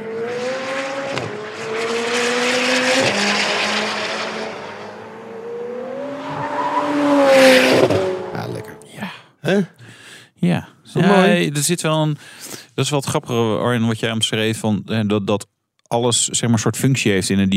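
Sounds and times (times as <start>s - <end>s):
sports car engine accelerating through gear changes: 0.0s - 8.9s
speech: 10.4s - 17.5s.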